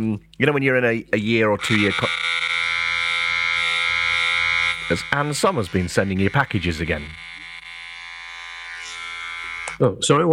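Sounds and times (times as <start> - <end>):
speech: 0.0 - 2.4, 4.9 - 7.2, 9.8 - 10.3
electric beard trimmer buzzing while trimming a beard: 1.6 - 9.8.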